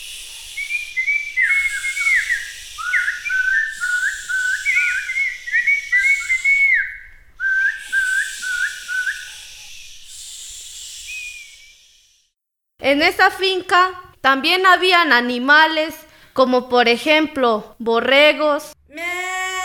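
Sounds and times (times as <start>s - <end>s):
soft steady airy hiss: 0.0s - 12.4s
birds singing on a farm with many large trees: 0.4s - 11.6s
speech: 12.9s - 18.8s.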